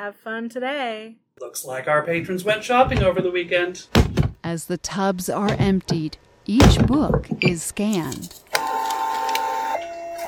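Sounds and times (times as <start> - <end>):
speech: 0.0 - 8.4
short clicking bursts of small printer: 7.9 - 9.7
small printer whirring while printing a hold slip: 8.5 - 10.2.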